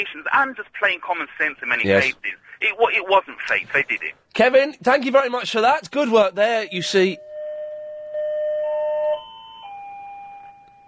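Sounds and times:
speech: 0.0s - 7.3s
electronic doorbell chiming: 6.6s - 10.8s.

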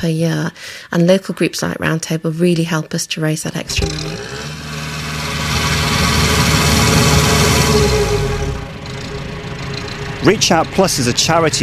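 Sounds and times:
speech: 0.0s - 4.5s, 10.2s - 11.6s
canal boat engine idling: 3.6s - 11.6s.

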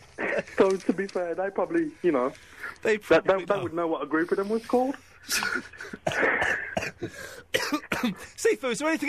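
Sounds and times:
speech: 0.4s - 9.0s
raspy coughs and throat-clearing: 5.3s - 8.4s.

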